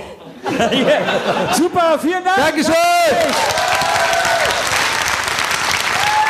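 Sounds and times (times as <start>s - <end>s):
laughter: 0.0s - 2.0s
speech: 0.6s - 3.6s
audience applause: 3.2s - 6.2s.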